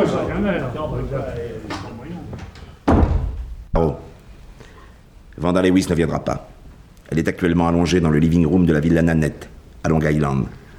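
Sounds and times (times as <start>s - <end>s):
speech: 0.0s - 1.8s, 5.4s - 6.5s, 7.1s - 10.6s
door slamming shut: 2.4s - 3.7s.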